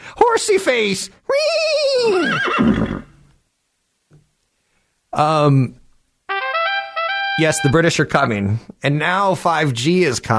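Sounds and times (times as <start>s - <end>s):
speech: 0.4s - 3.1s, 5.2s - 5.8s, 7.4s - 10.3s
horse neighing: 1.5s - 3.2s.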